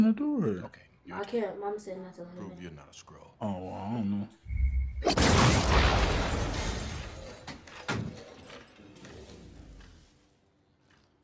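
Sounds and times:
speech: 0.0 - 6.7
photon blast energy effect boom: 4.5 - 7.0.

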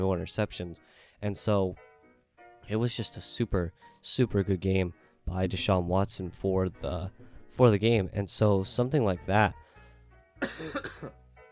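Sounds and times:
speech: 0.0 - 1.9, 2.6 - 9.6, 10.4 - 11.2
harsh cough: 10.4 - 11.2.

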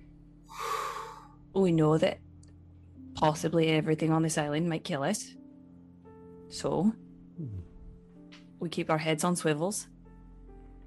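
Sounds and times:
sharp deep audible inhale: 0.5 - 1.4
speech: 1.6 - 2.2, 3.2 - 5.4, 6.5 - 7.7, 8.6 - 9.9.

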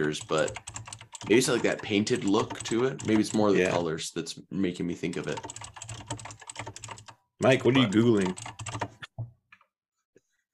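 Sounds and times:
rapid typing on a computer keyboard: 0.0 - 3.8, 5.1 - 9.1
speech: 0.0 - 5.6, 7.4 - 8.5.

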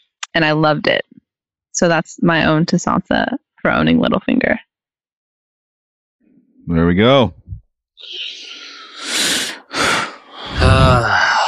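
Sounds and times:
speech: 0.4 - 1.1, 1.8 - 4.7, 6.7 - 7.4, 8.0 - 8.6, 10.7 - 11.3
heavy breathing: 8.0 - 11.4
voiced groan-like sigh: 8.0 - 11.4.

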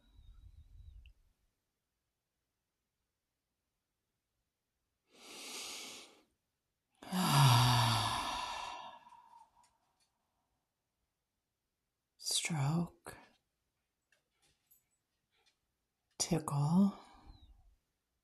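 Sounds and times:
slow deep breathing: 5.1 - 6.3, 7.0 - 10.2
speech: 12.5 - 13.2, 16.2 - 17.0.

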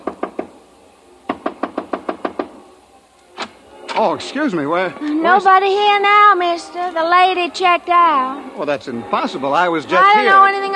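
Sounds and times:
knocking on a hotel room door: 0.0 - 0.5, 1.3 - 2.6
speech: 4.0 - 10.7.

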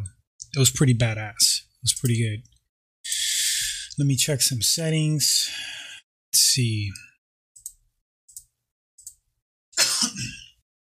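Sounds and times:
speech: 0.5 - 3.2, 4.0 - 7.1
person with asthma coughing into a microphone: 9.8 - 10.6.

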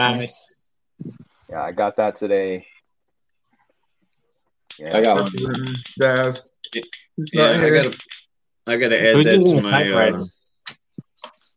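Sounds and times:
speech: 0.0 - 2.7, 4.8 - 8.1, 8.7 - 10.8
clacky keystrokes: 4.7 - 8.3.

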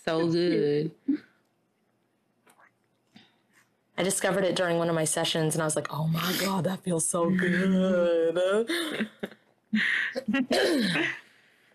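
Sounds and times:
speech: 0.0 - 1.3, 4.0 - 11.2
raspy throat clearing: 10.2 - 11.2
stifled half-swallowed cough: 10.2 - 11.2.

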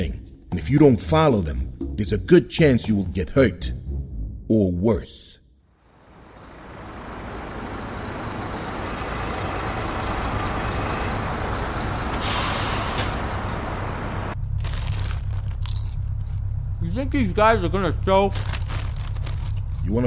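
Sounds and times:
speech: 0.0 - 3.8, 4.5 - 5.4, 17.0 - 18.6, 19.9 - 20.0
garbage truck engine rumbling: 5.8 - 20.0
garbage truck air brake hiss: 12.1 - 13.6.

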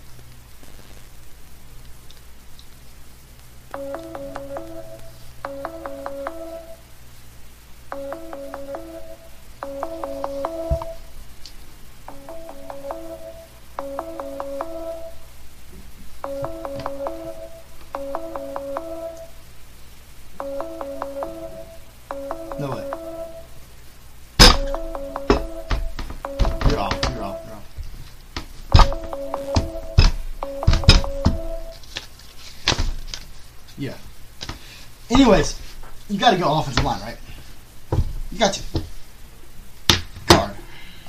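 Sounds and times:
steady rain-like hiss: 0.0 - 41.0
phone ringing in paired electronic trills, unanswered: 3.7 - 6.8, 7.9 - 11.1, 12.1 - 15.2, 16.2 - 19.4, 20.4 - 23.5, 24.4 - 27.6, 28.7 - 31.8
speech: 36.2 - 37.2.

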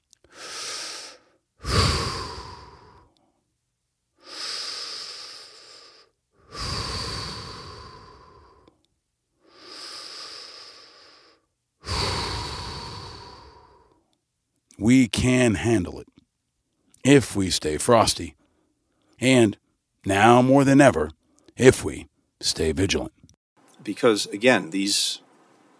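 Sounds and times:
deep breaths with hissing inhales and exhales: 0.2 - 3.5, 4.2 - 8.8, 9.4 - 14.1, 18.3 - 19.8, 21.2 - 22.4
speech: 14.8 - 16.1, 17.0 - 18.4, 19.2 - 23.2, 23.8 - 25.2.

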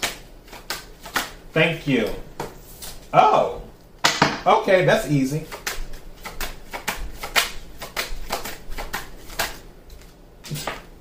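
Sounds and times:
tarot cards being shuffled: 0.0 - 3.1, 5.4 - 10.9
speech: 1.5 - 2.3, 3.1 - 3.6, 4.4 - 5.6.

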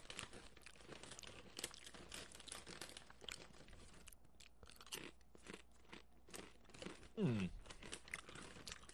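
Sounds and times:
chewing crisp sesame oil and salt potato chips: 0.0 - 8.9
mouth noises: 7.2 - 7.7.

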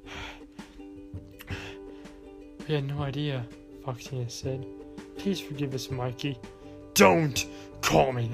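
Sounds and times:
voice imitating gasping for air: 0.0 - 2.3
speech: 2.7 - 8.3.

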